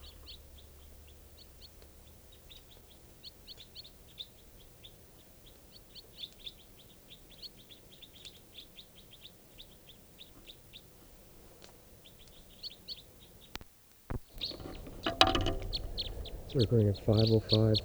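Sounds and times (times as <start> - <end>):
wild crossbill flock calling in a tall lodgepole pine: 14.1 - 17.8
speech: 16.6 - 17.8.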